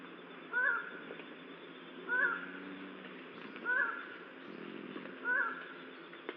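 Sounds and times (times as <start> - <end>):
low steady hiss: 0.0 - 6.3
Highland tinamou giving nasal hooted notes: 0.5 - 1.2, 1.9 - 6.1.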